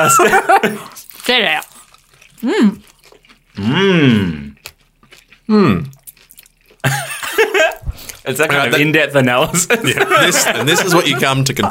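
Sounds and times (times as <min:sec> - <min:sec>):
laughter: 0:00.0 - 0:00.9, 0:06.9 - 0:11.6
speech: 0:00.0 - 0:01.7, 0:02.4 - 0:02.9, 0:03.6 - 0:04.4, 0:05.5 - 0:06.0, 0:08.2 - 0:11.6
crunching on fried chicken wings: 0:00.8 - 0:03.7, 0:04.4 - 0:06.9.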